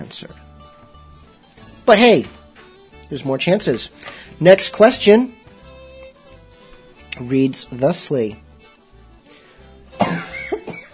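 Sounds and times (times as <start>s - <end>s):
speech: 0.0s - 0.5s, 1.9s - 2.4s, 3.1s - 5.4s, 7.2s - 8.4s
person coughing: 10.0s - 10.9s.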